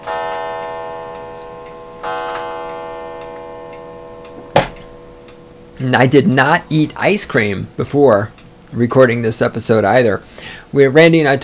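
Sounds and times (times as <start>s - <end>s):
clock chiming the hour: 0.0s - 11.4s
speech: 5.8s - 11.4s.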